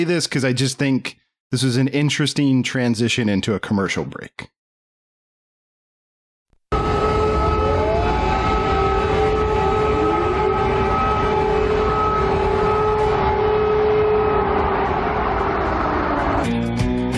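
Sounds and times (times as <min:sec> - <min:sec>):
speech: 0:00.0 - 0:04.6
constant rumble of noise: 0:06.7 - 0:16.4
air raid sirens wailing across a city: 0:06.7 - 0:16.5.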